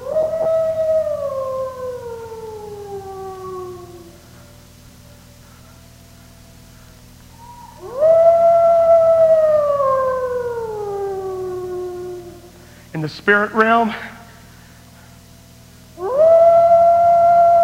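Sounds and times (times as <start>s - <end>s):
wolf howling: 0.0s - 5.4s, 7.3s - 12.8s, 16.0s - 17.6s
speech: 13.2s - 14.1s.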